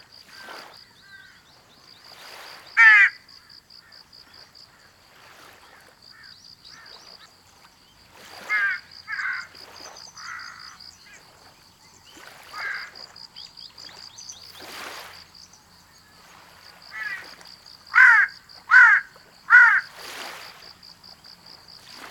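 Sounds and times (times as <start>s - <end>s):
Ryukyu jungle crow cawing: 2.8s - 4.0s, 8.4s - 9.6s, 10.2s - 10.8s, 12.5s - 13.0s, 16.9s - 17.3s, 17.9s - 19.9s.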